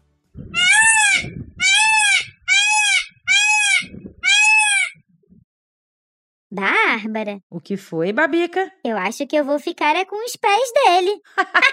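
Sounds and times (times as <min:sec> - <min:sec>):
peacock calling with loud drawn-out nasal wails: 0:00.5 - 0:05.0
speech: 0:06.6 - 0:11.7.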